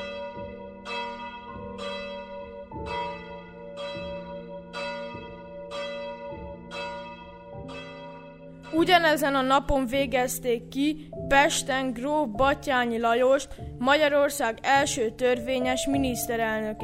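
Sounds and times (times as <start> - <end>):
church bells tolling: 0.0 - 9.6
speech: 8.7 - 16.8.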